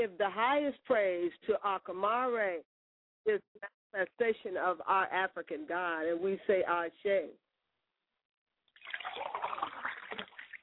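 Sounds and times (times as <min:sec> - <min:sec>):
speech: 0:00.0 - 0:07.4
water pouring from a glass: 0:08.7 - 0:10.6.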